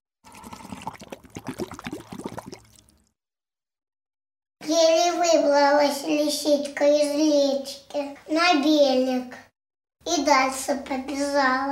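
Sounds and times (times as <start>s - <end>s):
bottle gurgling as it sinks in water: 0.2s - 3.1s
speech: 4.6s - 9.4s, 10.1s - 11.7s.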